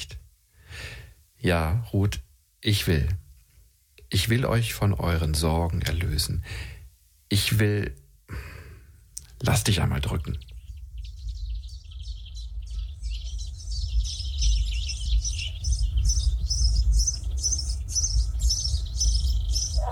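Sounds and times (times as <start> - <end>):
birds chirping at dawn: 0.0 - 3.2, 4.0 - 19.9
speech: 1.4 - 3.2, 4.1 - 8.5, 9.4 - 10.5
steady low rumble: 10.3 - 19.9.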